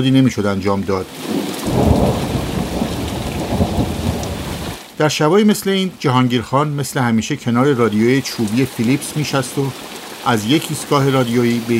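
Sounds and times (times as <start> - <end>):
speech: 0.0 - 2.3, 5.0 - 11.7
steady rain pouring: 0.0 - 11.7
deep thunder rumbling: 1.2 - 4.8.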